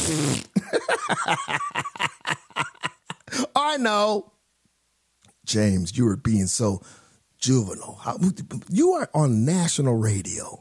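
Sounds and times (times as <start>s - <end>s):
fart sound effect: 0.0s - 0.6s
speech: 1.3s - 2.0s, 3.8s - 4.3s, 5.5s - 10.5s.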